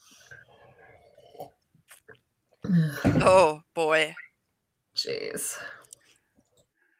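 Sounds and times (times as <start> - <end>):
person sipping and swallowing wine: 0.9 - 3.1
speech: 2.7 - 4.2, 5.0 - 5.8.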